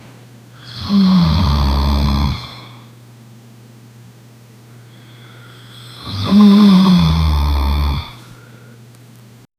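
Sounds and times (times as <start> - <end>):
20 year old man sleeping: 0.6 - 2.9, 5.0 - 8.5.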